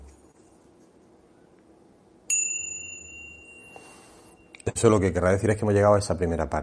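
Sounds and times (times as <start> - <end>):
quiet low hum: 0.0 - 6.6
small crotal bell struck once ringing: 2.3 - 4.6
speech: 4.7 - 6.6.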